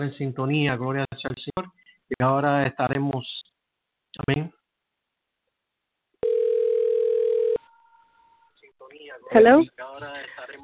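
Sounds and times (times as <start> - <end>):
speech: 0.0 - 3.5, 4.2 - 4.6, 9.3 - 10.6
telephone line ringing as a live call is placed: 6.2 - 8.0.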